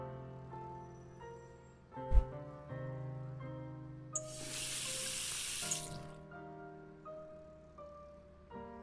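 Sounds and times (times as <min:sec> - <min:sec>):
steady music: 0:00.0 - 0:08.8
tap water gushing into a sink while washing a frying pan: 0:04.2 - 0:06.2.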